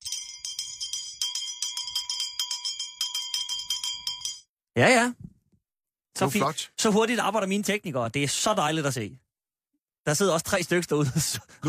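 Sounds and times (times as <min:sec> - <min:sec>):
small bell ringing: 0:00.0 - 0:04.6
speech: 0:04.8 - 0:05.3, 0:06.2 - 0:09.2, 0:10.0 - 0:11.6.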